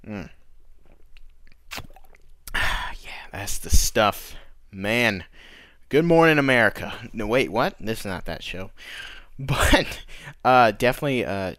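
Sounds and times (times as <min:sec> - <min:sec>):
speech: 0:00.1 - 0:00.4, 0:03.3 - 0:11.5
gulping water from a plastic bottle: 0:00.9 - 0:02.4.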